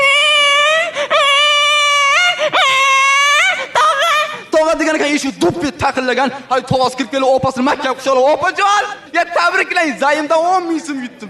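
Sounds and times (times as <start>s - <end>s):
infant crying in a high wailing tone: 0.0s - 4.5s
speech: 5.2s - 11.2s.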